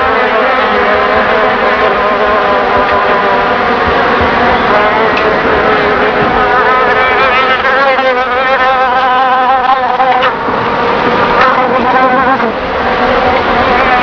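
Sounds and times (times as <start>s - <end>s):
fly buzzing: 0.0s - 14.0s.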